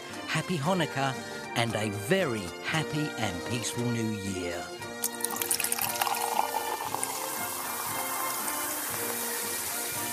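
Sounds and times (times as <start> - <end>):
speech: 0.4 - 4.8
gin pouring in a splashing stream: 5.0 - 10.1.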